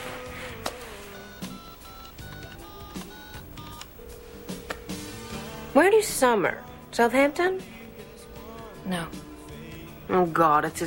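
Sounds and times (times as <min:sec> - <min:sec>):
telephone dialing tones: 0:01.2 - 0:05.2
speech: 0:05.8 - 0:07.8, 0:08.9 - 0:09.2, 0:10.1 - 0:10.8.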